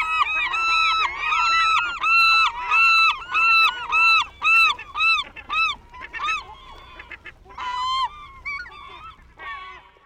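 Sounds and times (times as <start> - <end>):
flock of geese honking: 0.0 - 10.0.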